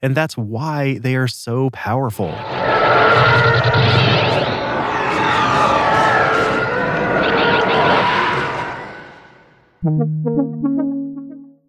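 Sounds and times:
speech: 0.0s - 4.5s, 9.8s - 10.9s
sci-fi starfighter engine roar built from elephant growls: 2.2s - 9.7s
sharp tonal harmonic whine: 2.3s - 10.8s.

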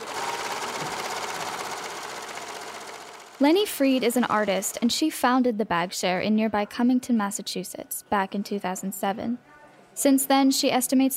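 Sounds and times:
serger sewing machine stitching fabric handles for reusable shopping bags: 0.0s - 5.0s
speech: 3.4s - 11.1s.

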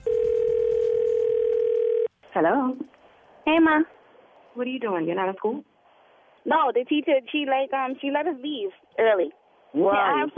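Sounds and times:
telephone line tone: 0.0s - 2.1s
speech: 2.4s - 4.0s, 4.6s - 5.7s, 6.4s - 10.3s.

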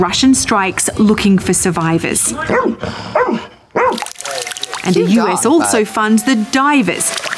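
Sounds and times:
speech: 0.0s - 3.5s, 4.8s - 7.2s
rescue dog barking: 2.5s - 4.1s.

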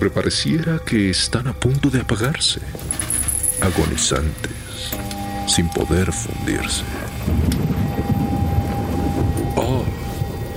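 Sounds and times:
speech: 0.0s - 7.7s
faint steady hum: 0.0s - 10.5s
thunderstorm rumbling: 5.2s - 10.5s
windy rain-like wash: 6.0s - 10.5s.

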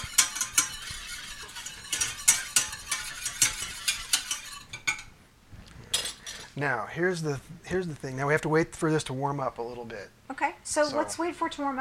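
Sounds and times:
mixture whisked together in a bowl: 0.0s - 5.1s
speech: 6.6s - 11.7s.

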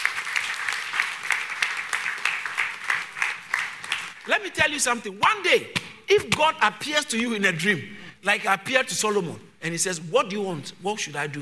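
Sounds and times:
congregation applauding: 0.0s - 4.7s
speech: 4.3s - 11.4s.

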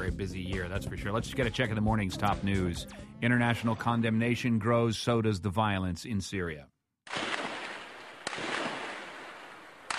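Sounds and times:
speech: 0.1s - 6.7s
gunfire from security forces backed by tanks in a city square: 7.1s - 9.9s.

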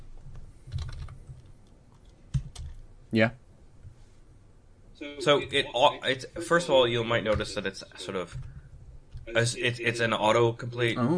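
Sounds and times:
low hum: 0.0s - 11.1s
computer keyboard clicks typing a search query into a game store: 0.7s - 2.8s
speech: 3.1s - 3.4s, 5.1s - 8.5s, 9.3s - 11.1s.

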